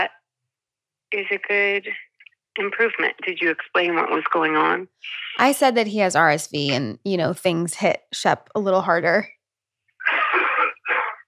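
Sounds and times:
speech: 1.1s - 9.4s
man coughing: 10.0s - 11.2s.

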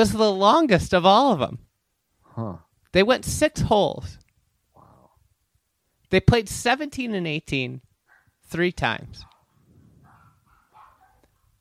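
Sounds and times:
speech: 0.0s - 1.7s, 2.4s - 4.2s, 6.1s - 7.9s, 8.5s - 9.3s
small dogs barking: 8.1s - 8.4s, 9.2s - 11.5s.

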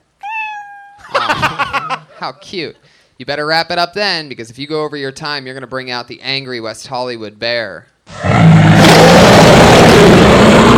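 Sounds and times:
cat meow sound effect: 0.2s - 1.0s
laughter: 1.0s - 2.4s
speech: 1.6s - 8.6s
louder harsh noisy burst: 8.1s - 10.7s.

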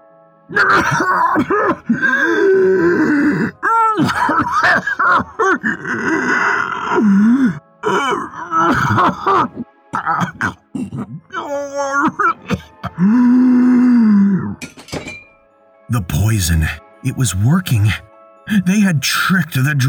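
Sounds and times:
rasping coughs: 0.5s - 7.0s, 7.8s - 13.1s
speech: 0.5s - 7.6s, 16.4s - 19.8s
person acting out choking: 0.5s - 14.8s.

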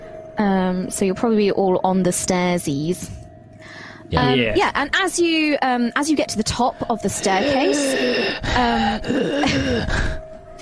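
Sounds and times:
speech: 0.4s - 10.1s
voice imitating a horrible wheezing as a creature sound: 7.1s - 10.2s.

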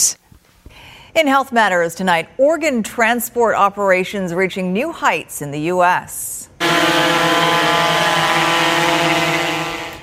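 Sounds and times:
speech: 1.2s - 6.3s
drone propellers buzzing in flight delivering a kidney for transplant in the U.S.: 6.6s - 10.0s.

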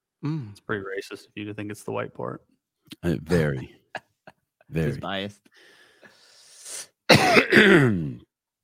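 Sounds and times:
speech: 0.2s - 4.1s, 4.7s - 5.8s, 6.7s - 8.3s
soft raspy breath: 5.5s - 6.9s
person clearing throat: 7.1s - 8.3s
person coughing: 7.1s - 8.3s.

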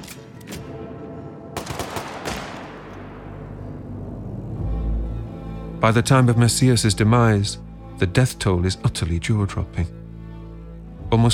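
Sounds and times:
firing squad volley of gunfire in a prison yard: 1.6s - 3.3s
speech: 5.8s - 10.0s, 11.1s - 11.3s.

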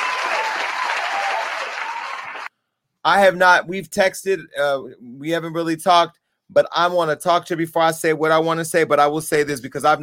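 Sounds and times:
round of applause from many hands: 0.0s - 2.5s
speech: 3.0s - 10.0s.

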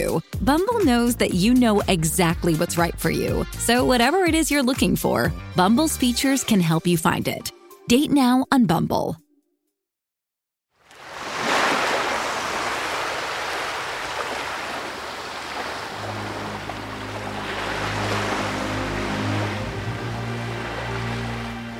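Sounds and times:
speech: 0.0s - 9.2s
gentle waves washing onto a brown sandy beach: 10.8s - 21.7s.

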